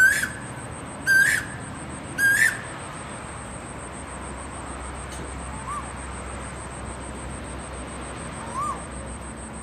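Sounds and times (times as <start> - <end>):
Asian koel calling to find a mate: 0.0 - 2.7, 5.5 - 6.0
constant thin high-pitched whine: 0.0 - 9.6.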